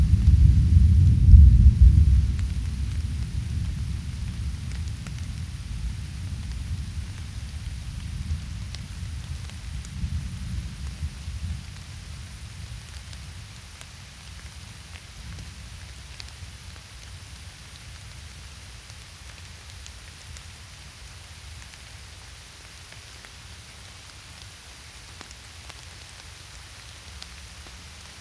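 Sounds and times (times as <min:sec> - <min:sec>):
thunder rumbling in a summer storm: 0:00.0 - 0:12.9
light rain hissing in the forest: 0:00.0 - 0:28.1.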